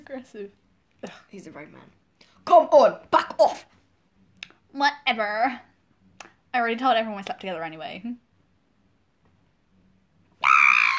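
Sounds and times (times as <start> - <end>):
speech: 0.1 - 3.8, 4.7 - 5.7, 6.5 - 8.2
woman screaming: 10.4 - 10.9.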